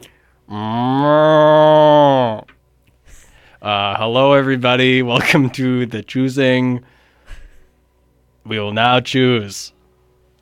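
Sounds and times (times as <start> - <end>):
speech: 0.5 - 1.3, 4.0 - 7.0, 8.5 - 9.8
cow mooing: 0.5 - 2.5.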